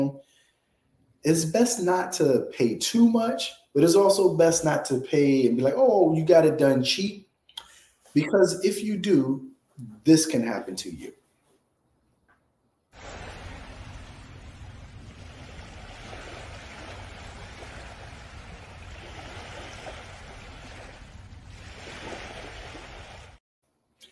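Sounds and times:
speech: 0.0 - 0.3, 1.2 - 7.2, 8.2 - 11.2
water gushing into a house: 13.0 - 23.4.

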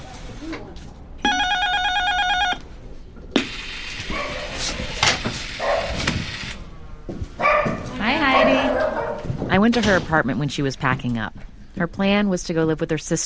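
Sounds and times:
electronic ringing tone: 1.2 - 2.6
old chow mix dog barking: 4.1 - 4.5, 5.6 - 6.0, 7.4 - 9.3
speech: 9.6 - 13.2.

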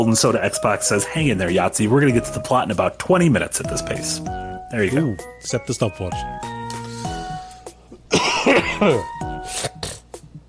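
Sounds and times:
speech: 0.0 - 6.6, 8.8 - 9.8
thick chunky coughing: 7.9 - 10.4.

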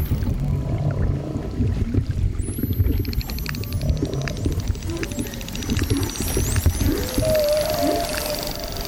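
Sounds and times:
constant low rumble of underwater water noise: 0.0 - 8.8
dolphin whistles recorded underwater by hydrophone from a zodiac: 6.0 - 8.8.

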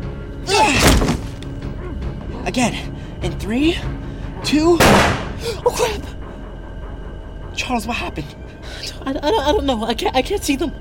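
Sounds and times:
door being broken down: 0.8 - 1.4
speech: 2.5 - 6.2, 7.6 - 10.8.

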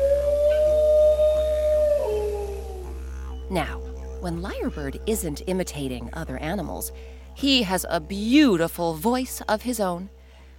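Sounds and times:
dingo howling: 0.0 - 6.9
speech: 3.5 - 10.2.

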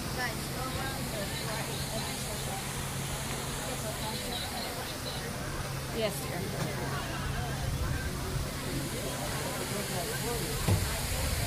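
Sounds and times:
faint murmuring voices: 0.0 - 11.4
rushing water of a backwards waterfall: 0.0 - 11.4
speech: 6.0 - 7.1.

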